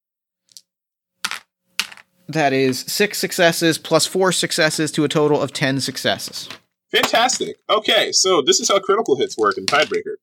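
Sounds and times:
dice rattling and clattering onto a hard surface: 1.2s - 2.1s
speech: 2.3s - 10.2s.

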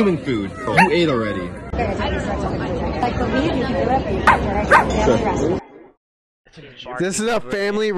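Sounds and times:
speech: 0.0s - 5.6s, 6.6s - 7.9s
chatter and murmuring voices: 0.0s - 7.9s
dog giving sharp barks: 0.7s - 1.0s, 4.3s - 5.0s.

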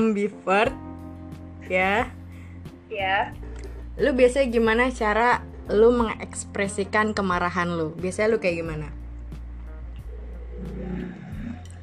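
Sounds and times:
speech: 0.0s - 0.8s, 1.6s - 2.2s, 2.9s - 3.4s, 4.0s - 9.0s
motorcycle engine revving and passing by: 10.5s - 11.6s.

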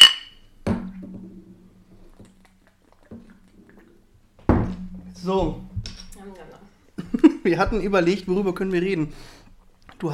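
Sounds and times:
beer glasses clinking in a toast: 0.0s - 0.5s
speech: 5.2s - 5.7s, 7.4s - 9.4s
laughter: 7.0s - 7.6s.

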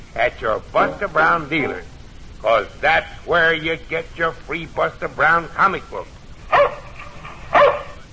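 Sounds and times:
quiet hum: 0.0s - 8.1s
speech: 0.2s - 6.8s
dog barking: 6.5s - 8.0s.

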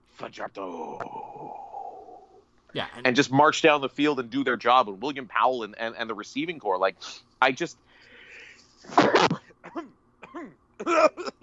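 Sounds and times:
speech: 0.2s - 1.7s, 2.7s - 7.8s, 8.8s - 11.4s
person sneezing loudly: 8.8s - 9.4s.

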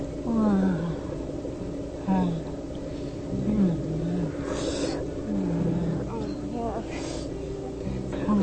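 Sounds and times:
woman grunting and moaning: 0.2s - 1.2s, 2.0s - 2.6s, 3.3s - 8.4s.

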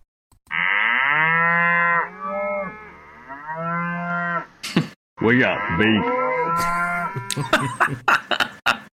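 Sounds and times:
cows mooing: 0.5s - 4.5s, 5.4s - 7.4s
speech: 4.8s - 8.2s
laughter: 6.6s - 8.9s.

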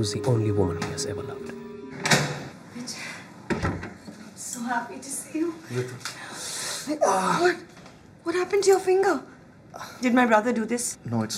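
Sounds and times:
speech: 0.0s - 2.1s, 4.7s - 11.3s
back door opening: 1.9s - 2.6s.

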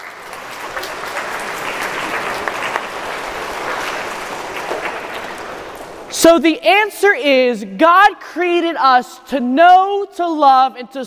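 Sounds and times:
audience applause for a student: 0.0s - 6.2s
speech: 6.2s - 11.0s.

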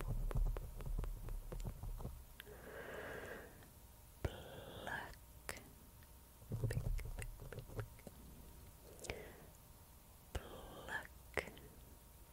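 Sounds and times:
faint steady hum: 0.0s - 12.3s
breathy hissing: 2.4s - 5.2s, 8.8s - 9.6s, 10.4s - 11.6s
mouth sounds with soft wet clicks and smacks: 6.6s - 8.1s.

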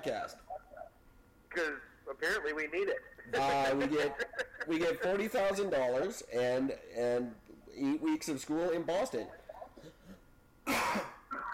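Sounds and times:
speech: 0.0s - 0.5s, 1.5s - 10.0s
laughter: 3.3s - 5.3s
short raspy throat-clearing: 9.8s - 11.3s
single loud cough: 10.6s - 11.3s.

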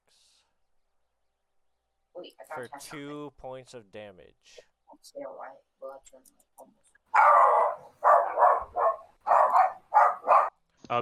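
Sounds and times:
speech: 2.2s - 7.9s
dog barking: 7.1s - 10.6s.

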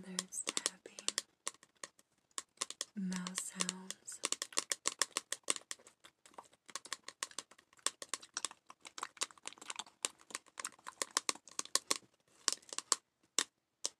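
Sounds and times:
fingertip tapping: 0.0s - 13.9s
short low vocal sounds: 3.0s - 4.2s.

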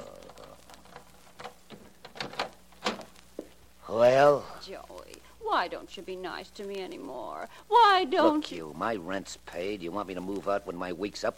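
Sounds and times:
door latch and handle clicking and rattling as a door is opened: 1.4s - 3.1s
speech: 3.9s - 4.9s, 5.5s - 11.3s.

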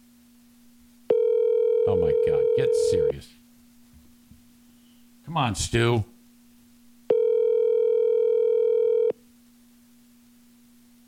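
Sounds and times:
faint low hum: 0.0s - 11.0s
electronic ring tone through a phone line on an unanswered call: 1.1s - 3.1s, 7.1s - 9.2s
speech: 5.3s - 6.1s.

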